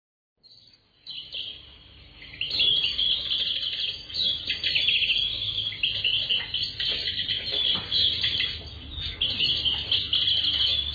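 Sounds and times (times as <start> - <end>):
garden birds singing in a garden: 0.4 - 10.9.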